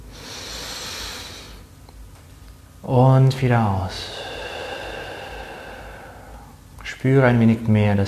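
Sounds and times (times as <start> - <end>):
deep breath in during a guided relaxation exercise: 0.0 - 1.7, 4.0 - 6.6
speech: 2.8 - 4.2, 7.0 - 8.0.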